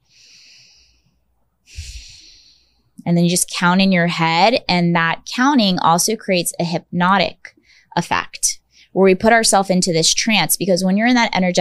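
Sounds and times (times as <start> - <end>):
fuller exhale with a brief nasal snort-like rush: 0.0 - 1.0, 1.7 - 2.7
slow deep breath drawn in with an airy hiss: 0.0 - 1.1, 1.7 - 2.8
speech: 3.0 - 11.5.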